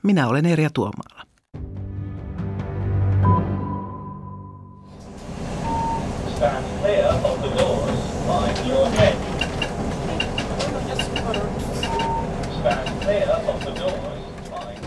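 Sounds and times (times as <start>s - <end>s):
speech: 0.0s - 1.2s
short electronic beep inside a city bus: 3.2s - 4.9s, 5.6s - 6.1s
city bus engine drone in Belfast Northern Ireland: 4.9s - 14.8s
rumbling road noise inside a city bus: 5.0s - 14.8s
bus passengers chattering: 5.4s - 14.8s.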